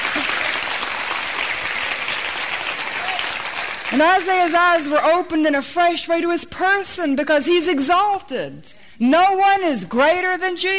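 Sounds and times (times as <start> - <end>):
audience applauding: 0.0 - 4.9
speech: 3.9 - 10.7.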